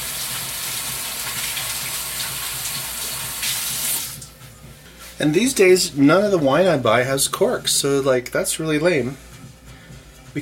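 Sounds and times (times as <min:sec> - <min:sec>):
water running from a tap as hands are washed: 0:00.0 - 0:04.3
speech: 0:05.2 - 0:09.3.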